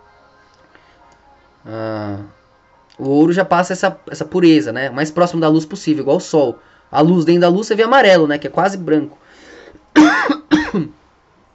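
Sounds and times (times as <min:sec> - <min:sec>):
speech: 0:01.6 - 0:02.4, 0:03.0 - 0:09.2
person coughing harshly: 0:10.0 - 0:11.0.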